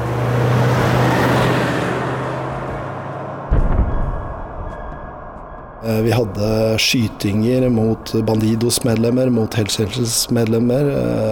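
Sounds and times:
car driving past: 0:00.0 - 0:05.7
speech: 0:05.8 - 0:11.3.

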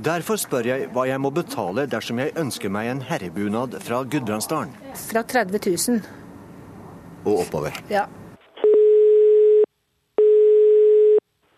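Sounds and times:
speech: 0:00.0 - 0:06.2, 0:07.2 - 0:08.2
telephone ringing tone during a call to a folk costume company in Oslo: 0:08.6 - 0:11.2.

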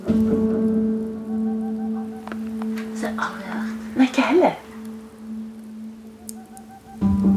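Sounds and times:
boreal owl hooting from a tree: 0:01.1 - 0:07.2
speech: 0:03.0 - 0:04.6.

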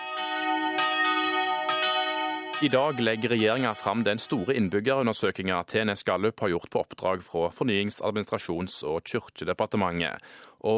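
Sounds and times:
church bells ringing: 0:00.0 - 0:05.0
speech: 0:02.6 - 0:10.7.

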